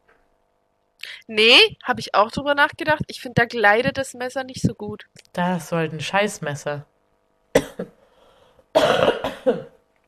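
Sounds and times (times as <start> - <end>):
speech: 1.3 - 6.9, 8.8 - 9.7
person coughing: 7.6 - 8.0, 8.8 - 9.8.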